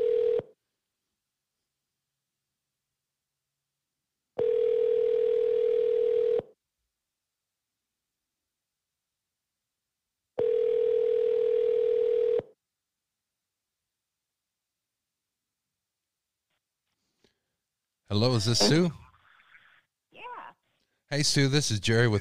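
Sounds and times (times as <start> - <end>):
telephone ringback tone on an outgoing call: 0.0 - 0.5, 4.4 - 6.4, 10.4 - 12.4
speech: 18.1 - 19.0, 21.1 - 22.2.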